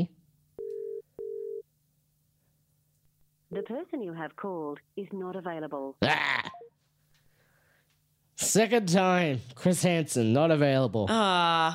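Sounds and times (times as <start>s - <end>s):
phone ringing tone double pulse: 0.6s - 1.6s
speech: 3.5s - 6.7s, 8.4s - 11.7s.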